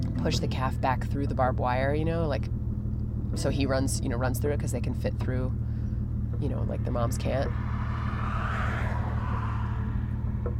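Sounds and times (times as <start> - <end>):
speech: 0.2 - 2.6, 3.3 - 5.7, 6.4 - 8.4
fast cars speeding past on a freeway: 6.2 - 10.5
vehicle whooshing past on a freeway: 7.0 - 10.5.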